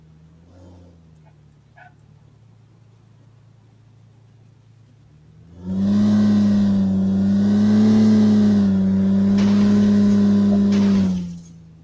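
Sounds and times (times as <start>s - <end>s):
car engine droning in a racing video game: 0.0s - 11.8s.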